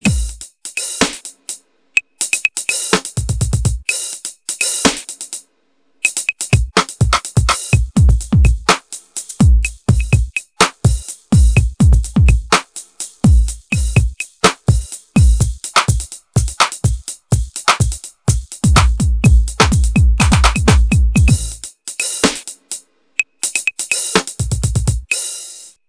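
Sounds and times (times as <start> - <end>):
flipped hip hop pattern: 0.0 - 5.4, 6.0 - 25.7.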